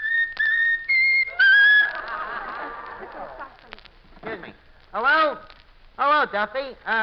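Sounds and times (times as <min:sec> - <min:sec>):
talking bird whistling a short tune: 0:00.0 - 0:02.0
laughter: 0:01.3 - 0:03.8
speech: 0:04.4 - 0:07.0.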